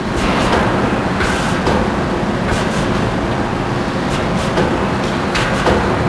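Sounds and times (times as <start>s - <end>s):
steel mill ambience: 0.0s - 6.0s.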